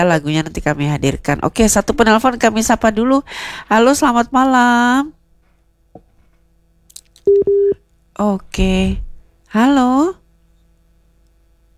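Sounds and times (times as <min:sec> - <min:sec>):
speech: 0:00.0 - 0:05.2, 0:07.3 - 0:10.2
phone busy tone after a call cuts off: 0:07.3 - 0:07.8.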